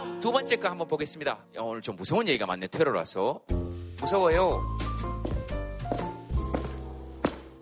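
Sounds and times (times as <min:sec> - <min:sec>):
speech: 0:00.2 - 0:05.3
heavy footsteps in an echoing hallway: 0:04.7 - 0:07.6.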